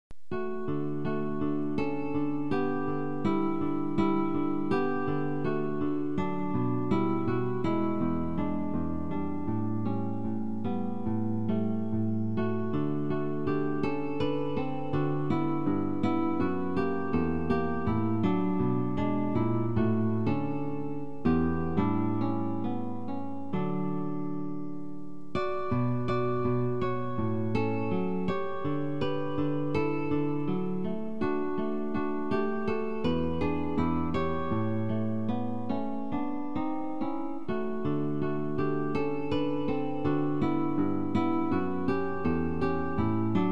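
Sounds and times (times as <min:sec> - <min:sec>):
guitar playing variations: 0:00.2 - 0:43.4.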